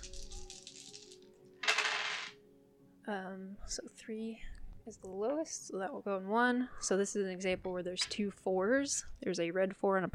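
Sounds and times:
dice rattling and clattering on a hard surface during a board game: 0.0 - 2.4
speech: 3.1 - 10.1.

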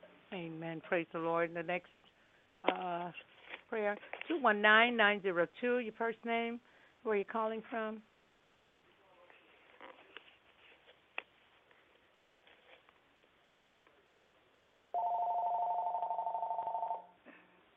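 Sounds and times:
faint noise on a conference call line: 0.0 - 17.7
speech: 0.3 - 2.0, 2.7 - 8.1
electronic phone ring through a low-quality conference call line: 15.0 - 17.2.

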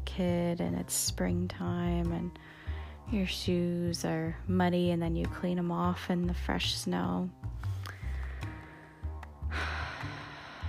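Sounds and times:
speech: 0.1 - 7.7
deep breathing: 2.4 - 3.1, 7.6 - 10.6.

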